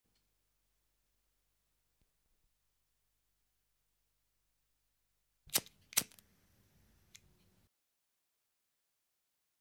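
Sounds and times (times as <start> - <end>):
lighter: 5.5 - 7.5.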